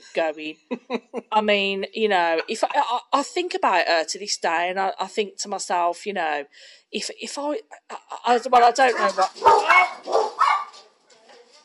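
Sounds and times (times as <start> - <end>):
speech: 0.0 - 10.3
dog barking: 8.9 - 10.8.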